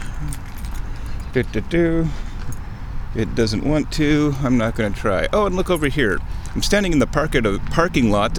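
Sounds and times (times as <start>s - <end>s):
keys jingling while trying to lock car: 0.0s - 1.7s, 5.6s - 6.6s
low outdoor rumble: 0.0s - 8.3s
speech: 1.3s - 8.3s.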